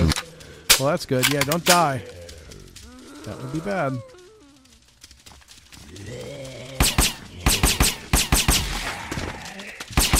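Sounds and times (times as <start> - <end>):
speech: 0.8 - 2.2, 3.2 - 4.1
gunfire in a zombie video game: 6.8 - 9.0, 10.0 - 10.1.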